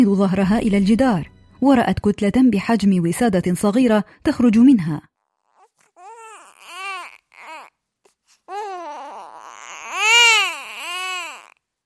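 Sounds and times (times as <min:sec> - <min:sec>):
speech: 0:00.0 - 0:05.1
newborn baby crying: 0:05.3 - 0:11.6.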